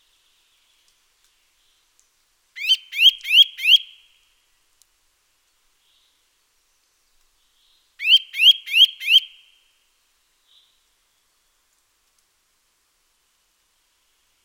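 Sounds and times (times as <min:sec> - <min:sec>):
Eurasian nuthatch Sitta europaea uttering rising whistled notes: 0:08.0 - 0:09.3.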